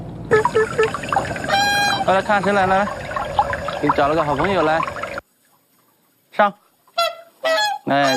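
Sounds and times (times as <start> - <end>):
swan giving short nasal honks: 0.3 - 5.2, 7.0 - 8.1
speech: 2.1 - 3.0, 3.8 - 4.9, 6.4 - 6.6, 7.9 - 8.1.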